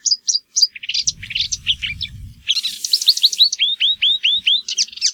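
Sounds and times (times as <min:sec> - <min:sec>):
Marsh warbler singing a varied chattering medley: 0:01.1 - 0:05.0.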